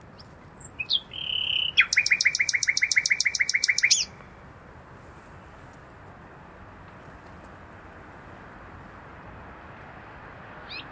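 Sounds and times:
common nightingale Luscinia megarhynchos singing: 0.1s - 4.2s, 10.6s - 10.9s.

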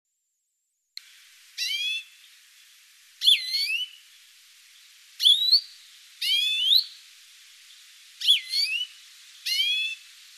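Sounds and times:
European greenfinch calls, Chloris chloris: 1.5s - 2.4s, 3.2s - 10.3s.

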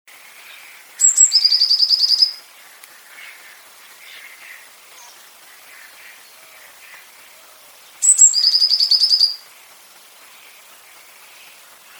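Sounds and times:
soft faint chirps: 0.3s - 11.9s
Eurasian blue tit Cyanistes caeruleus song with high thin note and buzzy trill: 0.4s - 11.9s.

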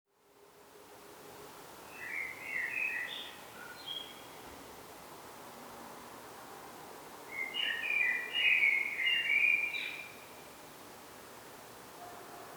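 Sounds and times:
steady background hiss: 0.2s - 12.5s
common blackbird fluted warbling song: 1.9s - 4.4s, 7.3s - 10.2s.

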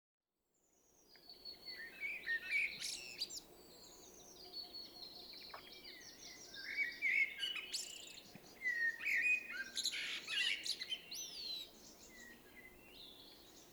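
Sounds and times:
Common blackbird Turdus merula singing: 0.8s - 13.7s.

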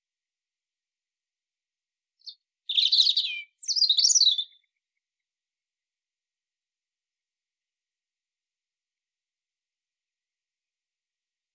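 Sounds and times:
European robin singing: 2.2s - 4.8s.

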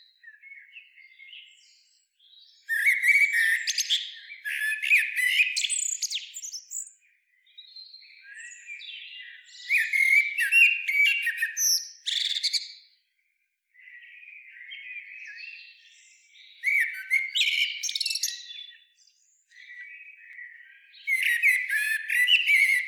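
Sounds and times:
Eurasian blackbird Turdus merula low fluted whistles: 2.7s - 6.8s, 9.6s - 12.7s, 16.6s - 18.5s, 21.0s - 22.8s.

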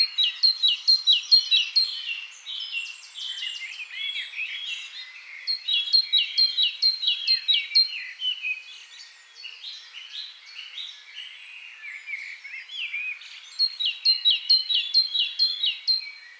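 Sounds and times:
great tit Parus major sharp down-slurred call bursts: 0.0s - 8.7s, 12.8s - 16.3s.

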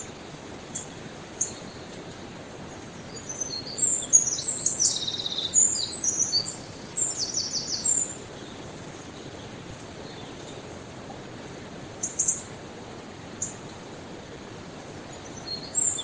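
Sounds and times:
Eurasian wren Troglodytes troglodytes singing: 0.0s - 10.6s, 12.0s - 12.5s, 13.4s - 13.6s, 15.0s - 16.0s
faint background noise: 0.0s - 16.0s.

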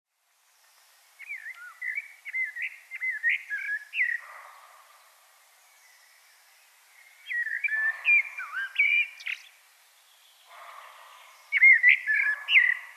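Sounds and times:
Turdus merula common blackbird singing fluty warbling whistles: 1.2s - 4.2s, 7.2s - 9.4s, 11.5s - 12.9s.

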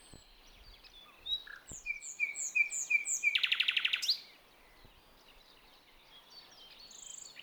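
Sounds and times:
common nightingale Luscinia megarhynchos singing: 0.0s - 4.3s.

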